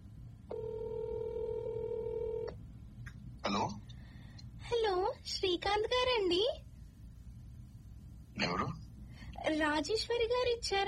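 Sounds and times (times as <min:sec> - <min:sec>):
outgoing telephone ring tone: 0:00.5 - 0:02.6
speech: 0:04.9 - 0:06.6, 0:09.5 - 0:10.8.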